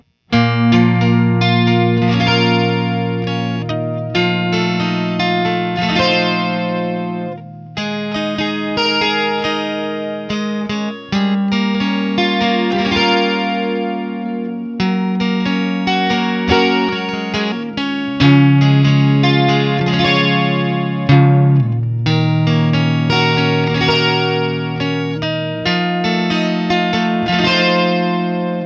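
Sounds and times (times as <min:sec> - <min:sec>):
doubleneck 12-string guitar: 0:00.0 - 0:28.6.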